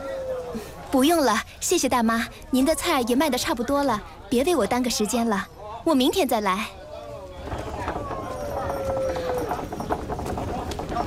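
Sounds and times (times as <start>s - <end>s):
noise: 0.0s - 11.0s
speech: 0.5s - 6.8s
hooves of a horse-drawn carriage clip-clopping: 7.1s - 11.0s.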